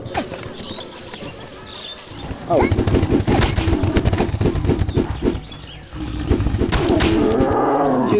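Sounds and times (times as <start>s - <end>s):
rhino galloping: 0.3s - 8.1s
low rumble: 2.2s - 8.0s
speech: 2.5s - 3.0s.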